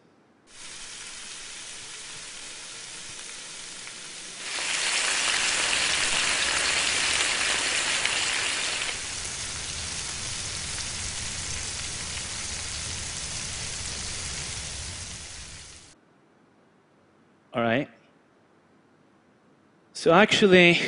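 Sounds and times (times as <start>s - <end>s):
bacon frying: 0.5s - 16.0s
speech: 17.6s - 17.9s, 20.0s - 20.8s.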